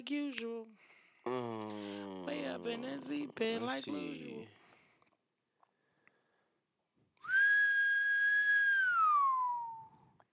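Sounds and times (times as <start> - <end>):
speech: 0.0 - 4.6
person whistling one long bending note: 7.2 - 10.2.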